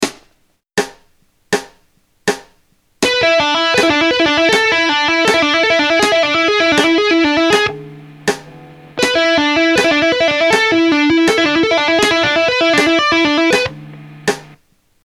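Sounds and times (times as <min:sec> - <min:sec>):
rock guitar tapping: 0:03.0 - 0:14.6.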